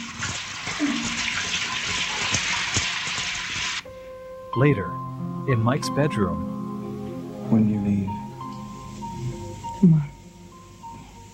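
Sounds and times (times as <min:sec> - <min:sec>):
shower spray running: 0:00.0 - 0:03.8
speech: 0:04.5 - 0:06.6, 0:07.5 - 0:08.2, 0:09.8 - 0:10.1.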